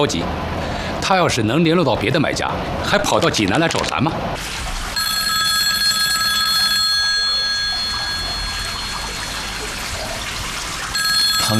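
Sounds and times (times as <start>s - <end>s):
speech: 0.0s - 0.4s, 1.1s - 4.7s
telephone ringing with a bright electronic trill: 5.0s - 11.5s.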